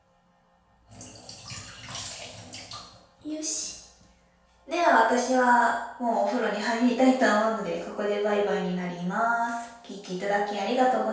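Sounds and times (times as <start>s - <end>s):
urine poured from a plastic bottle gushing and splashing: 0.9s - 3.2s
speech: 3.3s - 3.8s, 5.0s - 11.1s.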